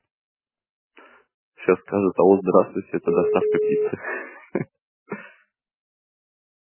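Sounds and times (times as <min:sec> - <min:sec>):
speech: 0:01.6 - 0:04.7
laughter: 0:01.7 - 0:05.3
telephone call-forwarding tone on a phone line: 0:03.1 - 0:03.9
two steady mid-pitched beeps: 0:03.1 - 0:03.9.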